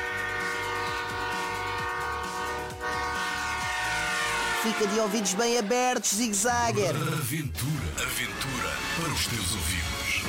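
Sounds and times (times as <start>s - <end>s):
train horn blaring: 0.0s - 6.5s
speech: 4.6s - 10.2s.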